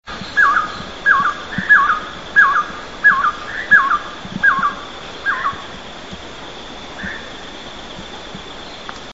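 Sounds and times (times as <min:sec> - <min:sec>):
rufous-breasted wood quail calling: 0:00.2 - 0:05.7.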